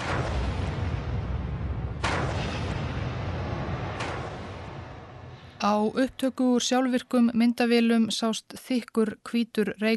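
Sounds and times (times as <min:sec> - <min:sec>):
sharp cracks of explosion at a nuclear power plant: 0:00.0 - 0:05.5
explosion at a nuclear power plant hit by a tsunami, deep rumbling roar: 0:00.0 - 0:05.6
speech: 0:05.6 - 0:09.9.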